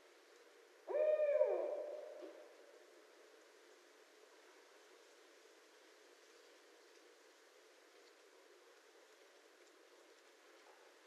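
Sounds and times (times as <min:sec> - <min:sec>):
barred owl hooting: 0:00.9 - 0:02.5.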